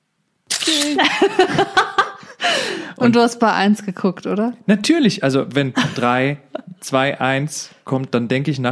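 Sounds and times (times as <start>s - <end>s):
passport-photo booth camera firing: 0.5s - 1.0s
speech: 0.7s - 1.8s, 2.4s - 8.6s
laughter: 0.7s - 2.8s, 5.8s - 6.8s.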